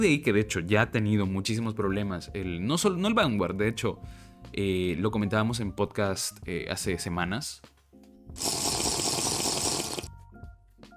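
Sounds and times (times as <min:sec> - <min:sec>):
speech: 0:00.0 - 0:08.7
person drinking water: 0:08.4 - 0:10.1.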